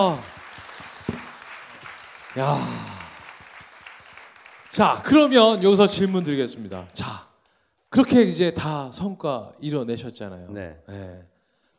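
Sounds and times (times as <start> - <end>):
speech: 0.0 - 0.3, 2.4 - 2.9, 4.7 - 7.3, 7.9 - 11.3
crowd applauding with many hands clapping: 0.0 - 7.0.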